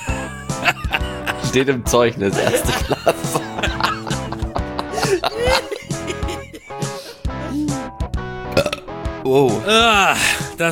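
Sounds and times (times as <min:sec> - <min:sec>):
laughter: 0:00.0 - 0:07.6
speech: 0:01.5 - 0:03.2, 0:09.3 - 0:10.7
loud burp: 0:08.4 - 0:09.0.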